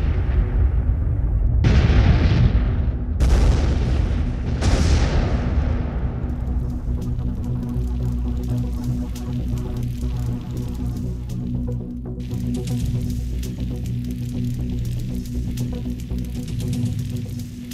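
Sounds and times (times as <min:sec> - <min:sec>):
loud explosions: 0:00.0 - 0:08.4
large fire roaring and crackling: 0:00.0 - 0:17.7.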